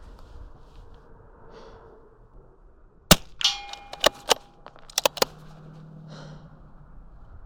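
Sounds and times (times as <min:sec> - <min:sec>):
quiet breathing: 0:00.0 - 0:02.6, 0:05.8 - 0:07.4
ringing metallic clangs of targets: 0:03.1 - 0:05.4
biathlon rifle shots at targets: 0:03.1 - 0:05.5.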